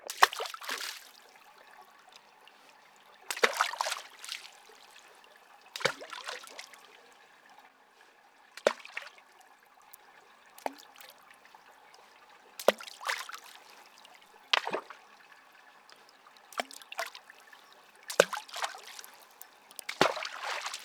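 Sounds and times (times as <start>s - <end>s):
water over pebbles: 0.0s - 20.8s.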